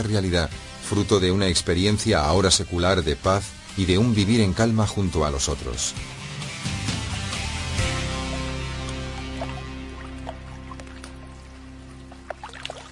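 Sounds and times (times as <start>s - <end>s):
speech: 0.0s - 6.2s
gentle waves of the Baltic Sea lapping: 7.7s - 12.9s
small water splashes and drips: 7.7s - 12.9s
constant low hum: 7.8s - 12.9s.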